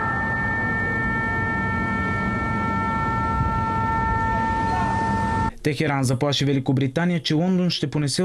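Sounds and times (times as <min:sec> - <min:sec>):
air raid siren holding a steady tone: 0:00.0 - 0:05.5
speech: 0:05.6 - 0:08.2.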